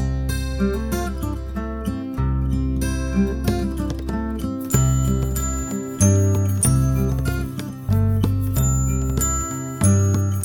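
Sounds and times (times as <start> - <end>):
strummed guitar: 0.0 - 10.4
glockenspiel melody: 4.6 - 10.4.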